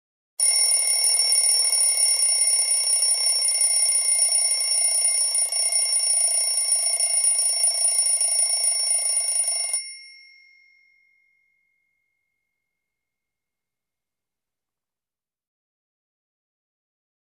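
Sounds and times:
classic alarm clock bell ringing: 0.4s - 11.9s.

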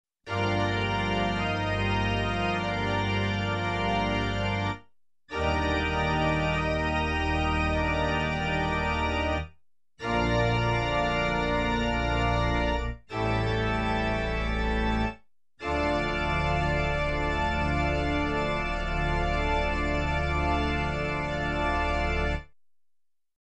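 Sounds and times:
dramatic full organ chord progression: 0.3s - 22.5s.

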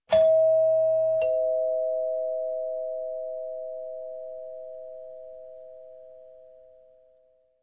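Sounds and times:
slow single doorbell ring: 0.1s - 3.2s.

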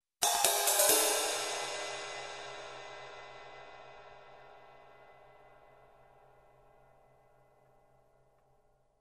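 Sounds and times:
fast cymbal hits: 0.2s - 6.9s.

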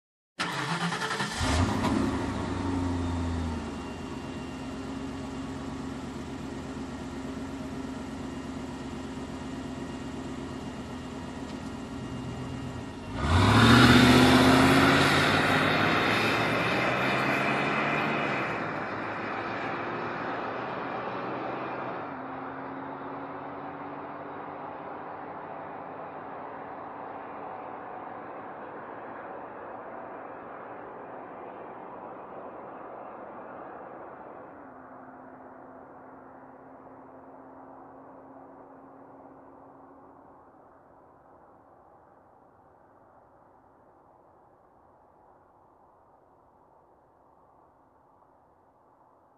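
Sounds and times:
car engine ignition: 0.4s - 20.2s
car driving off fast: 0.4s - 39.6s.

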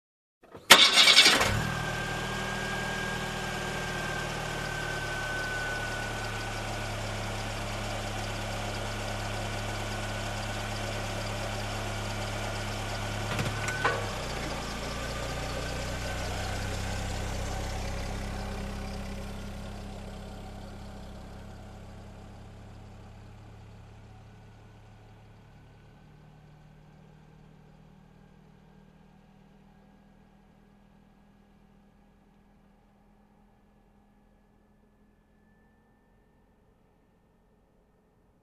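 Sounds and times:
car motor starting: 0.4s - 25.7s.

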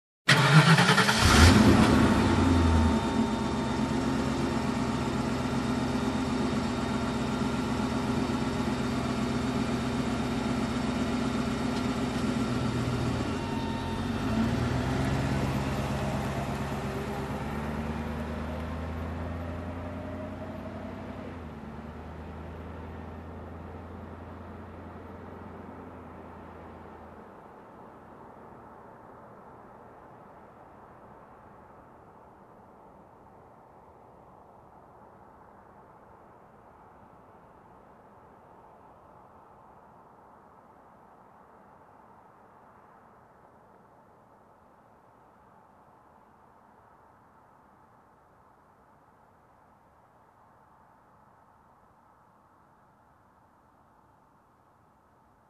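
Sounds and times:
SUV engine ignition: 0.3s - 27.1s.

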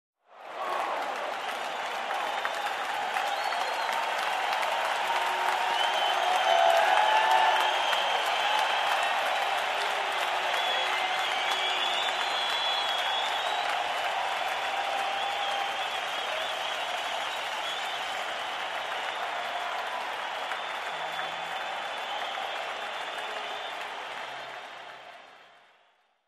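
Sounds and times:
huge crowd applauding: 0.3s - 26.2s.

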